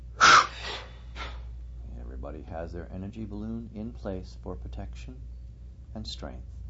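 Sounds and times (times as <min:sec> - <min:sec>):
sharp forceful exhale during a guided breathing exercise: 0:00.2 - 0:01.5
speech: 0:02.3 - 0:05.3, 0:05.9 - 0:06.6.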